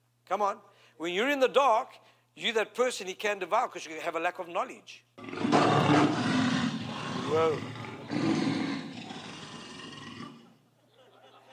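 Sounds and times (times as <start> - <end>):
speech: 0.3 - 6.2, 7.3 - 8.5
lion roaring: 5.2 - 10.6
laughter: 10.8 - 11.5.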